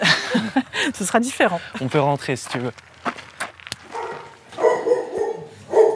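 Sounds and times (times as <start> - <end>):
laughter: 0.0 - 2.1
speech: 1.0 - 3.0
dogs barking in animal shelter kennels in Hermeray, Yvelines, France: 3.9 - 5.9.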